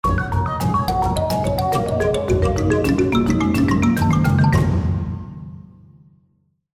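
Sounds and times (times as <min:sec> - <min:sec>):
musical spin effect: 0:00.1 - 0:05.0.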